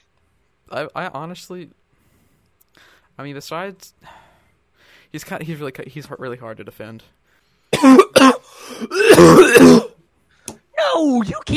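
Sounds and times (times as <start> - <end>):
speech: 0.7 - 1.8, 2.8 - 4.2, 5.1 - 9.8, 11.0 - 11.5
raspy drawn-out throat clearing into rough hacking: 7.7 - 10.0
sharp coughs: 7.7 - 10.0.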